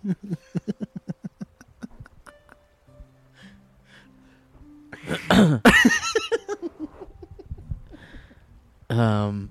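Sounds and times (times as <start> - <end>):
laughter: 0.0 - 2.6, 5.0 - 7.6
harsh cough against the microphone: 5.0 - 6.0.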